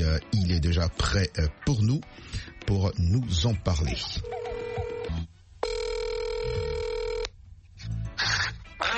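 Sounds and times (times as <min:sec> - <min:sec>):
speech: 0:00.1 - 0:04.9
phone line ring tone on an outgoing call: 0:04.2 - 0:07.3.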